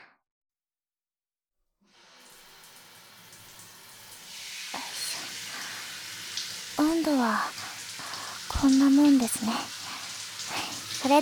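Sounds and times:
shower water running: 2.2s - 11.1s
speech: 7.0s - 7.6s, 8.6s - 9.8s.

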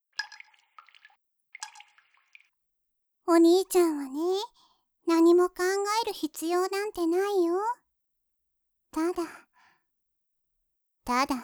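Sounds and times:
water dripping into water: 0.1s - 2.6s
speech: 3.3s - 7.8s, 9.0s - 9.4s, 11.1s - 11.4s.

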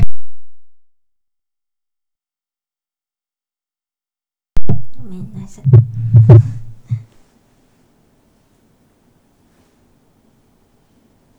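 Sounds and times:
faint low rumble: 4.6s - 7.1s
throat clearing: 4.8s - 7.1s
speech: 5.0s - 6.6s.

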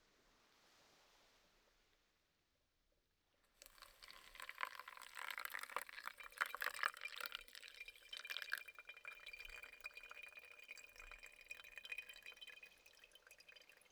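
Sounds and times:
hot water being poured with small splashing and dripping: 3.6s - 13.9s.

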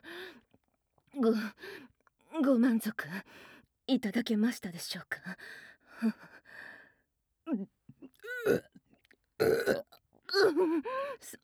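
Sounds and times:
speech: 1.2s - 6.7s, 7.5s - 7.8s, 8.4s - 8.7s, 9.4s - 11.4s
loud croaking burps: 8.3s - 8.7s, 9.4s - 10.4s.

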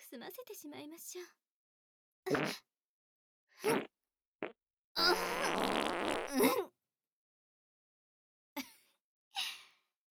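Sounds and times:
speech: 0.1s - 1.5s
young woman farting in a rose garden: 2.3s - 2.6s, 3.7s - 6.5s.

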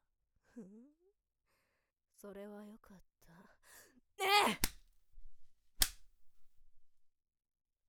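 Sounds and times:
speech: 0.6s - 1.0s, 2.2s - 4.6s
whip crack: 5.8s - 6.1s.

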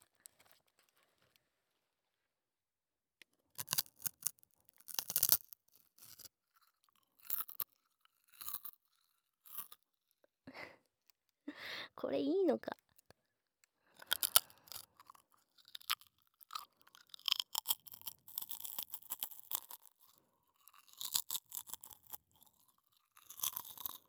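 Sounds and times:
crunchy chewing of food: 3.5s - 9.9s, 13.9s - 24.0s
speech: 12.0s - 12.8s.

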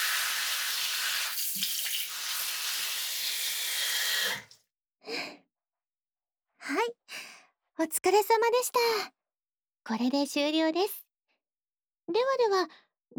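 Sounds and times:
running water rinsing hair at the back of the head during a hair wash: 0.0s - 4.6s
speech: 7.8s - 9.2s, 9.8s - 11.0s, 12.1s - 13.1s.

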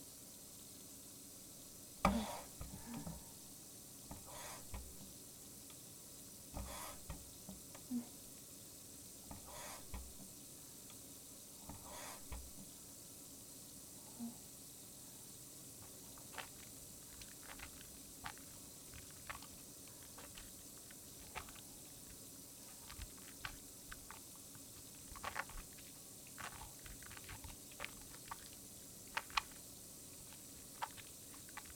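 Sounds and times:
faint steady hiss: 0.0s - 31.7s
hand soap worked into a lather squishing: 15.8s - 31.7s.

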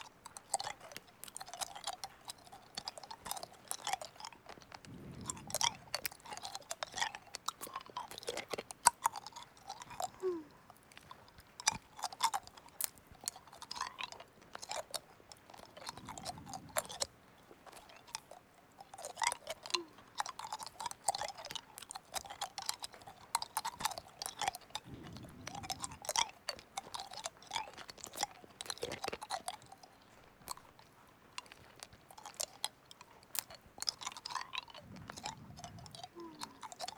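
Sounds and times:
pickled ume plum being chewed and crunched: 0.0s - 36.9s
faint breaths: 3.3s - 8.4s, 9.3s - 10.9s, 15.7s - 17.9s, 24.7s - 27.8s, 34.0s - 36.9s.

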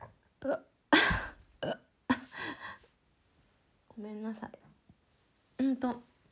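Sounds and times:
speech: 0.4s - 1.8s, 4.0s - 4.6s, 5.6s - 6.1s
throaty burps: 0.4s - 1.9s.

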